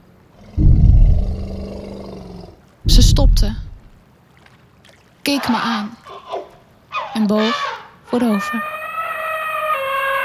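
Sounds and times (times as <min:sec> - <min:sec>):
passing elephant roaring: 0:00.3 - 0:03.9
speech: 0:02.9 - 0:03.7, 0:05.2 - 0:06.0, 0:07.2 - 0:08.7.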